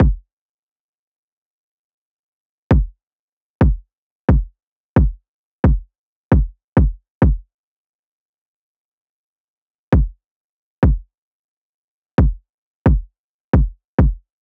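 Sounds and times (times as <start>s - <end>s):
kick drum loop in A minor: 0.0s - 0.2s, 2.7s - 3.0s, 3.6s - 7.4s, 10.0s - 10.2s, 10.8s - 11.1s, 12.2s - 14.3s.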